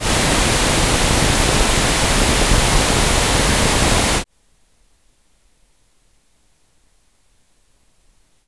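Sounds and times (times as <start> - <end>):
phase and antiphase noise: 0.0 - 4.2.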